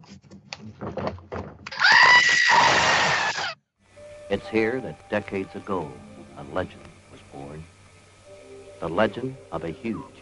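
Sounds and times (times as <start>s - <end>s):
bumps and rustling: 0.0s - 1.7s
goat screaming: 1.7s - 3.6s
speech: 4.3s - 6.9s, 8.8s - 10.2s.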